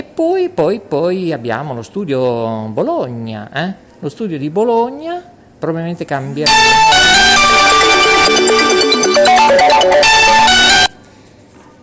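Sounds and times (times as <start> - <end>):
speech: 0.2 - 8.6
loud electronic phone ringtone: 6.5 - 11.0.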